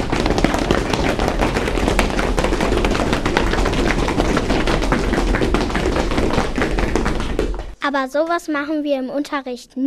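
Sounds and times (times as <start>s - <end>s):
many feet stamping and trampling on a hard floor in a school bench circle: 0.0s - 7.8s
speech: 7.9s - 9.8s.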